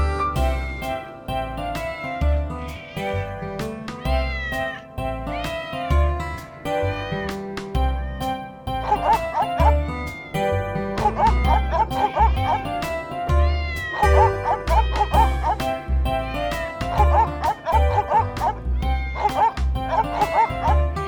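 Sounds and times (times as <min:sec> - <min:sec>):
bouncy musical backing with a thumping low beat: 0:00.0 - 0:21.0
dog next to firewood barking: 0:08.8 - 0:12.9, 0:13.9 - 0:18.6, 0:19.2 - 0:21.0.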